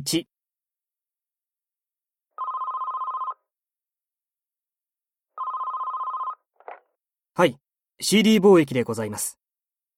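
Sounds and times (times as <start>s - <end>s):
speech: 0.0s - 0.3s, 7.4s - 9.4s
telephone ringing: 2.4s - 3.5s, 5.4s - 6.8s.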